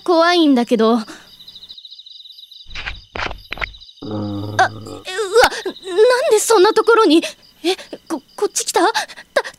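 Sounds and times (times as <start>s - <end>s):
speech: 0.0s - 1.2s, 4.0s - 5.1s, 5.7s - 9.3s
wolf growling: 4.0s - 5.1s.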